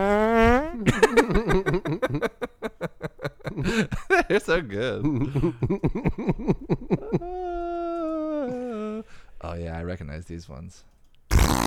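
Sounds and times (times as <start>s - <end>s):
recorded fart sound effect played from a music streaming service: 0.0s - 0.8s, 11.3s - 11.6s
laughter: 0.8s - 9.1s
speech: 4.3s - 6.6s, 9.9s - 11.6s.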